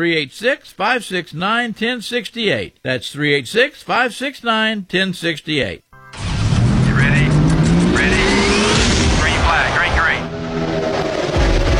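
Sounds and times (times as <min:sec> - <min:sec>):
speech: 0:00.0 - 0:05.8
race cars revving at a NASCAR race: 0:06.2 - 0:11.7.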